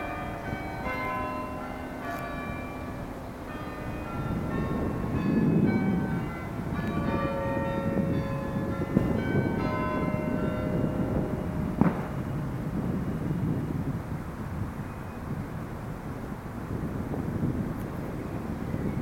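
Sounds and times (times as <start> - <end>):
carillon bells ringing on a village green: 0.0 - 12.5
steady outdoor rumble: 0.0 - 18.9.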